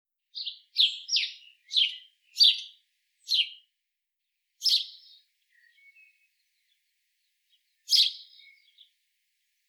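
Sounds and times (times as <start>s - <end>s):
house sparrow Passer domesticus chirping: 0.3s - 3.7s, 4.6s - 9.0s.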